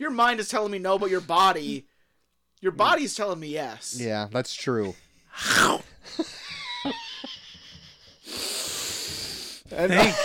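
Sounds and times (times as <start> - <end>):
speech: 0.0 - 1.9, 2.6 - 7.0, 9.7 - 10.2
laughter: 6.0 - 8.3, 9.8 - 10.2
person sniffing hot peppers: 8.2 - 9.7.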